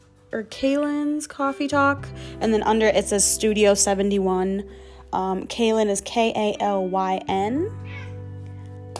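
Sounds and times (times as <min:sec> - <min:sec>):
speech: 0:00.3 - 0:07.8
male cat yowling while play-fighting: 0:07.8 - 0:08.1.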